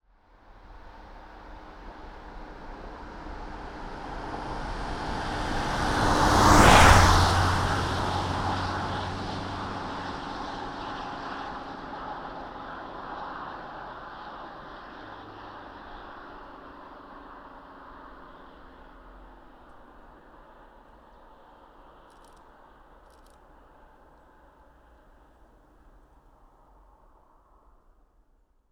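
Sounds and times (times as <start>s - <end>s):
Renault Master II 2.8dTi van passing by at medium speed: 1.6s - 23.8s.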